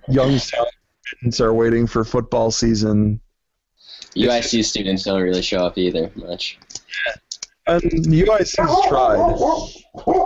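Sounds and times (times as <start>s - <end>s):
speech: 0.1s - 3.2s, 3.9s - 10.2s
dog barking: 8.8s - 10.2s.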